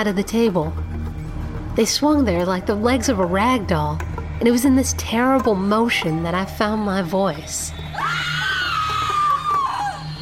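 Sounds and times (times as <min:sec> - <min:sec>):
speech: 0:00.0 - 0:01.0, 0:01.8 - 0:08.3
person screaming in terror: 0:08.0 - 0:10.1.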